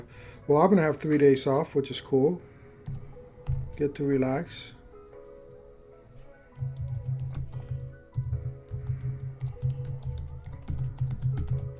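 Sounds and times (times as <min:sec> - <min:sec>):
speech: 0:00.5 - 0:03.0, 0:03.8 - 0:04.8, 0:06.6 - 0:06.8
typing on a computer keyboard: 0:06.6 - 0:11.7.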